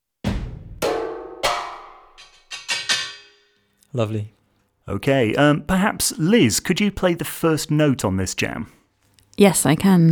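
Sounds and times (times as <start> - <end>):
sampled metal percussion strikes with long shimmering decays: 0.3 - 3.7
speech: 3.9 - 8.8, 9.4 - 10.0.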